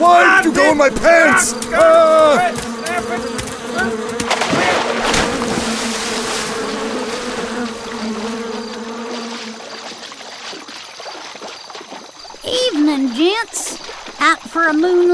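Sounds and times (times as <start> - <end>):
bees buzzing loudly in a steady drone: 0.0 - 10.8
speech: 0.7 - 2.7, 13.0 - 15.1.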